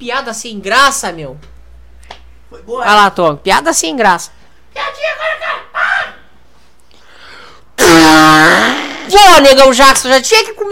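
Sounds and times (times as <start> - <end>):
speech: 0.0 - 1.5, 2.5 - 5.6, 8.4 - 10.7
fart: 7.8 - 9.2.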